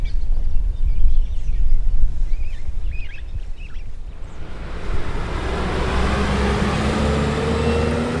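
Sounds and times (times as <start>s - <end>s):
birds chirping: 0.0s - 4.6s
highway traffic roar: 0.0s - 8.1s.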